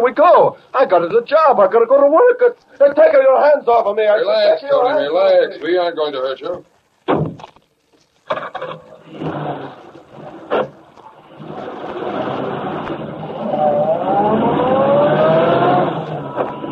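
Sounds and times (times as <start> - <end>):
speech: 0.0 - 7.5
knocks and thumps: 7.1 - 7.6
car engine running and pulling away: 9.0 - 16.7.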